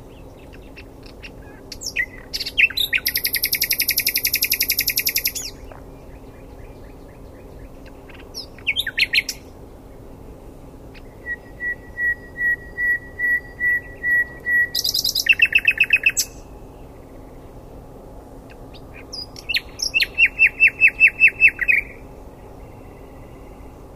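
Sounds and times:
Common nightingale song: 0.0 - 10.1, 10.9 - 17.6, 18.4 - 23.9.

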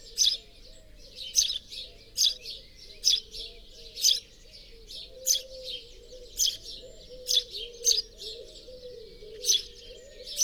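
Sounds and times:
house sparrow chirping: 0.0 - 0.5, 1.2 - 3.4, 4.0 - 4.3, 6.4 - 8.2, 9.3 - 10.4.

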